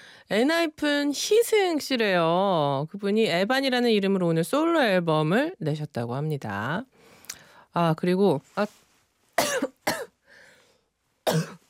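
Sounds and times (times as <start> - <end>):
speech: 0.3 - 7.0, 7.7 - 8.8, 11.3 - 11.6
person coughing: 9.4 - 10.1, 11.3 - 11.6.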